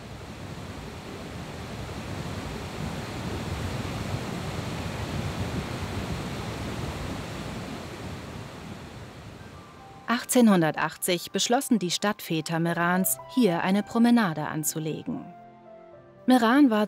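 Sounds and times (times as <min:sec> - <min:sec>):
river rushing through a rocky gorge: 0:00.0 - 0:09.8
speech: 0:10.3 - 0:15.4, 0:16.3 - 0:16.8.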